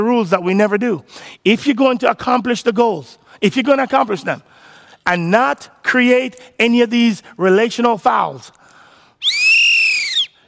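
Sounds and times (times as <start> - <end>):
speech: 0.0 - 8.6
shrill whistle blast: 9.2 - 10.4.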